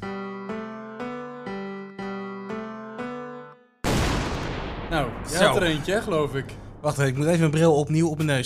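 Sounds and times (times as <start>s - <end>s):
cannon firing boom: 3.8s - 7.6s
speech: 4.9s - 8.4s.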